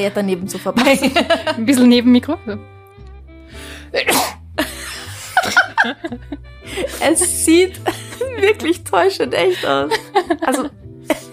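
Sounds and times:
speech: 0:00.0 - 0:02.8, 0:03.5 - 0:04.3, 0:05.8 - 0:11.2
people chuckling and laughing: 0:00.8 - 0:01.8, 0:04.6 - 0:11.3
woman sneezing on command: 0:04.0 - 0:04.4.

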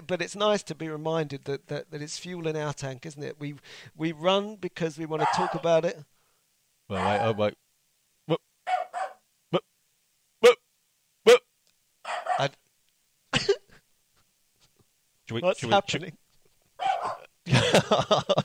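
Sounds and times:
speech: 0:00.1 - 0:06.1, 0:06.9 - 0:07.6, 0:12.4 - 0:12.6, 0:15.3 - 0:16.2, 0:17.8 - 0:18.4
dog barking at passersby from a house's front window: 0:05.2 - 0:05.7, 0:06.9 - 0:07.4, 0:08.7 - 0:09.2, 0:12.0 - 0:12.6, 0:16.8 - 0:17.3
laughter: 0:17.5 - 0:18.4.

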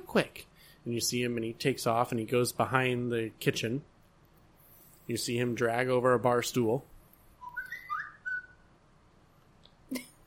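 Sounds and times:
speech: 0:00.1 - 0:03.9, 0:05.1 - 0:06.9
man whistling short rising notes: 0:07.4 - 0:08.7.

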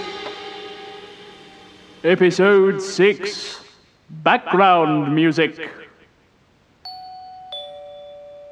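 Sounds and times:
speech: 0:02.0 - 0:05.8
electric doorbell two-tone descending chime: 0:06.8 - 0:08.5.

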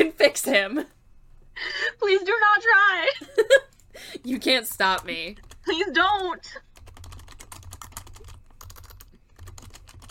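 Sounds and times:
speech: 0:00.0 - 0:01.0, 0:01.6 - 0:06.7
rapid typing on a computer keyboard: 0:04.9 - 0:10.0.

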